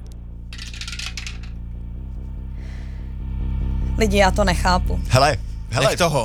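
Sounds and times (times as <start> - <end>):
steady low electrical hum: 0.0 - 6.2
plastic die clattering down a dice tower: 0.6 - 1.6
speech: 4.0 - 6.2.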